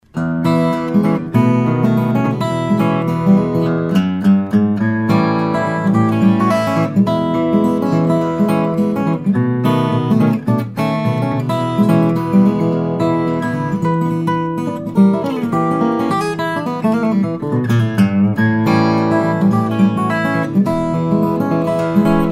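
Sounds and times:
14 fret noncutaway steel string flattop guitar: 0.0s - 22.3s.

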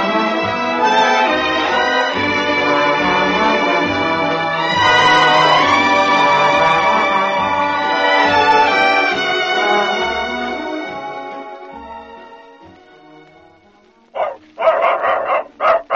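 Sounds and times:
sustained musical chord: 0.0s - 15.7s
dog barking sharply: 14.2s - 15.9s.

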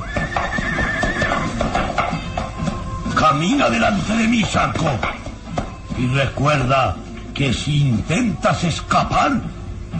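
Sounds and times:
horse neighing as a rider mounts: 0.0s - 2.9s
speech: 3.3s - 5.2s, 6.0s - 9.9s.

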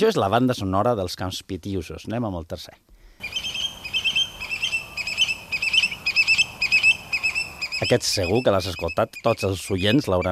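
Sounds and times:
speech: 0.0s - 3.4s, 7.8s - 10.3s
scops owl calling at night on Ibiza: 3.2s - 10.3s.

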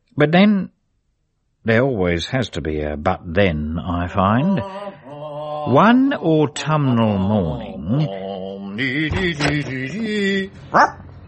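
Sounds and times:
speech: 0.2s - 0.8s, 1.6s - 5.0s, 5.6s - 8.2s, 8.8s - 11.0s
pink scabby mongrel puppy barking on a front step: 10.7s - 11.0s.

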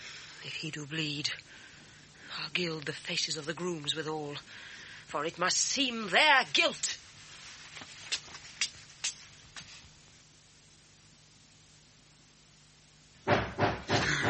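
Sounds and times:
speech: 0.4s - 1.6s, 2.4s - 6.9s
knocking on a door: 13.3s - 14.2s.

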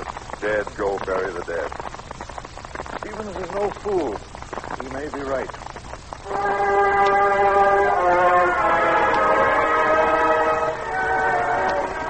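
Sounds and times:
faint train rumble: 0.0s - 12.0s
speech: 0.4s - 2.0s, 3.2s - 5.6s, 6.3s - 6.8s
train horn blast as it pulls into a Pennsylvania town: 6.2s - 12.0s.

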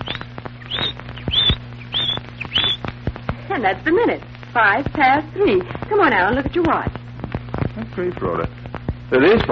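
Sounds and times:
female canary chirping: 0.0s - 3.0s
low steady hum: 0.0s - 9.5s
speech: 3.6s - 7.0s, 7.8s - 9.5s.

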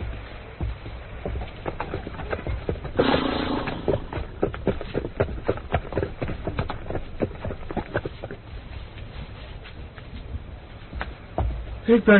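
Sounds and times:
horses' hooves clip-clopping as the horses are tied up: 0.0s - 12.1s
rustling or snorting: 1.4s - 10.9s
speech: 11.9s - 12.1s.

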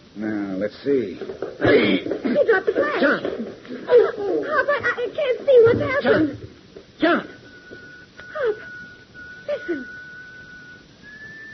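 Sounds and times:
speech: 0.2s - 7.3s
whistled notes of a funeral march: 7.3s - 11.5s.

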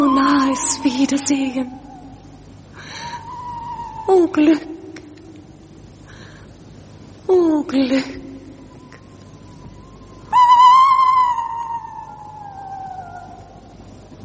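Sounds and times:
owl hooting: 0.0s - 5.4s, 8.5s - 13.9s
speech: 0.9s - 2.0s, 4.1s - 4.8s, 7.3s - 8.3s.

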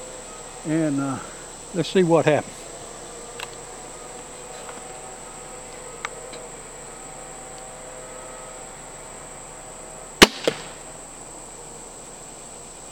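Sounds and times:
chorus of crickets or insects outdoors: 0.0s - 12.9s
speech: 0.6s - 2.6s
arrow hitting a target with a thud: 10.2s - 10.8s
crossbow firing an arrow: 10.2s - 10.9s.

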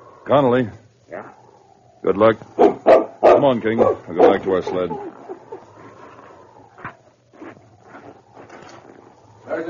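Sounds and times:
low hum: 0.0s - 9.6s
speech: 0.3s - 1.4s, 2.0s - 5.1s
dog barking: 2.6s - 5.2s
laughter: 4.5s - 6.0s.

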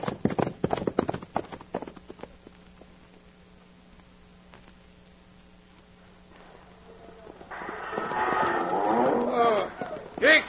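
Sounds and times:
ponies galloping along a dusty trail: 0.0s - 2.9s, 6.8s - 10.4s
low steady hum: 0.0s - 10.4s
bellowing moo-like animal calls: 6.9s - 10.1s.

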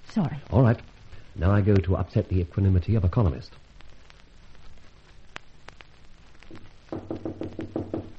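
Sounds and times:
faint hiss of noise: 0.0s - 8.1s
speech: 0.2s - 3.6s
scattered taps: 5.3s - 8.1s
urgent loud knocking on a wooden door: 6.9s - 8.1s.

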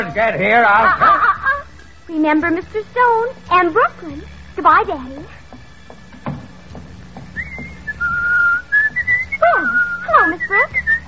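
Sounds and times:
speech: 0.0s - 1.2s, 2.1s - 5.4s, 9.5s - 11.0s
laughter: 0.0s - 1.8s
soft knocks or footsteps: 5.2s - 9.4s
person whistling a lively tune in a school hallway: 7.4s - 11.0s.

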